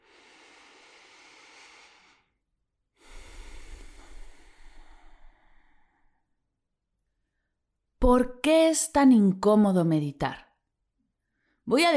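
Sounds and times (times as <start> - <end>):
deep breath in and out: 0.0 - 6.4
speech: 8.1 - 10.4, 11.7 - 11.9.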